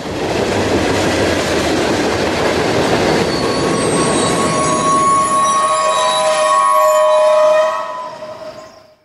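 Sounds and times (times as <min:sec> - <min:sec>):
passenger train rumbling on rails: 0:00.0 - 0:09.0
passenger train wheels squealing: 0:02.9 - 0:09.0.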